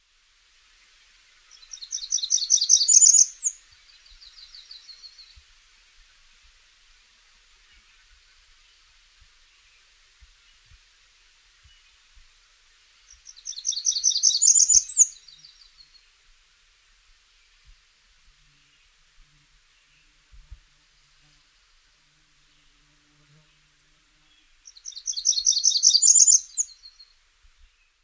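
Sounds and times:
Blackburnian warbler singing: 1.5 - 5.4, 13.1 - 16.0, 24.3 - 27.0.

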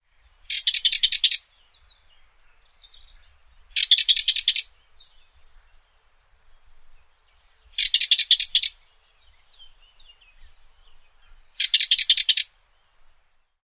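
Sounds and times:
Sardinian warbler: 0.0 - 13.6.

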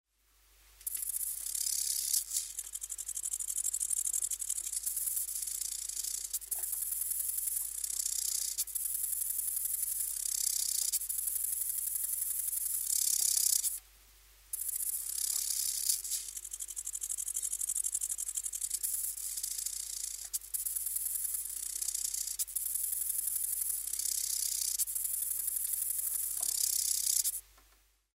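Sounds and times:
lesser marsh grasshopper: 0.8 - 13.8, 14.5 - 27.4.

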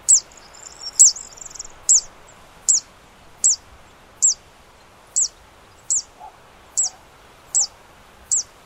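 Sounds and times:
zitting cisticola calling: 0.1 - 3.7, 4.2 - 4.4, 5.1 - 7.7, 8.3 - 8.5.

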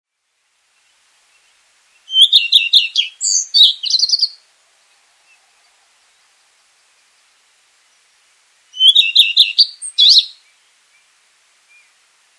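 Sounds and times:
redstart singing high-pitched verses: 0.8 - 8.1, 8.7 - 11.1.

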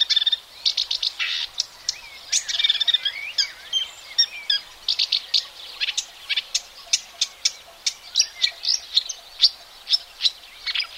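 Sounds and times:
marsh warbler singing: 0.0 - 10.9.

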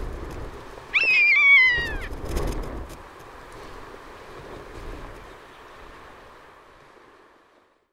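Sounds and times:
rough-legged buzzard: 0.9 - 2.9.

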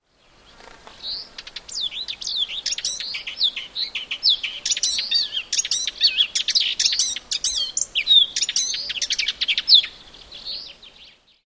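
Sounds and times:
subalpine warbler: 0.2 - 11.1.

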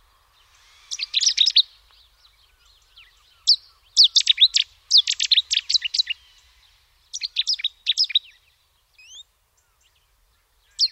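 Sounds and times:
Cetti's warbler explosive chirping bursts: 0.4 - 8.4.

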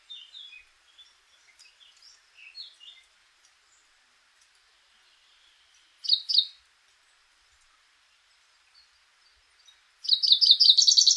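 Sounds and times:
common chaffinch singing: 0.0 - 3.9, 4.8 - 6.6, 8.2 - 11.1.

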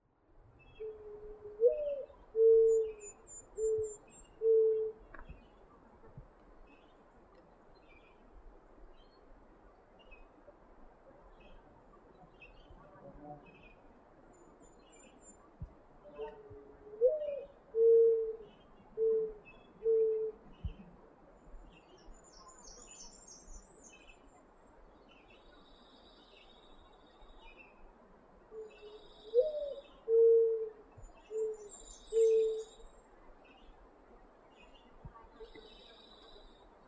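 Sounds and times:
mourning dove cooing: 0.7 - 5.3, 16.0 - 20.9, 28.5 - 32.9.

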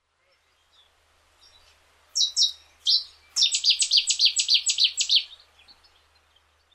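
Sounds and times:
Cetti's warbler: 2.2 - 5.4.

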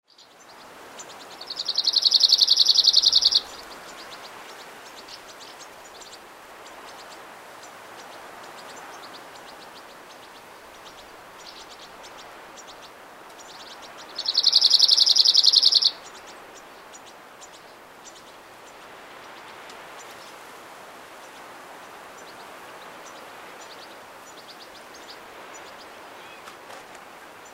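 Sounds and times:
cirl bunting calling: 1.0 - 4.3, 13.4 - 16.4, 24.4 - 26.6.

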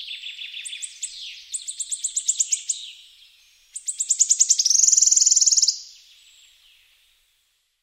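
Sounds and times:
wood warbler singing: 0.0 - 3.0, 3.7 - 6.8.

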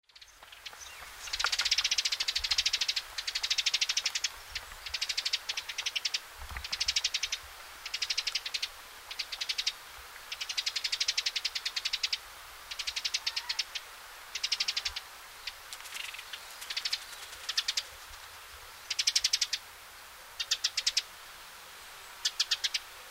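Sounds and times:
tree sparrow calling: 0.0 - 18.1, 18.8 - 19.6, 20.4 - 21.1, 22.0 - 22.9.

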